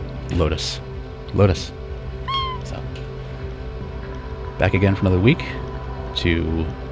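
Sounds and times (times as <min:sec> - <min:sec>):
speech: 0:00.3 - 0:01.8, 0:04.6 - 0:05.6, 0:06.2 - 0:06.8
house cat meowing: 0:02.2 - 0:02.9.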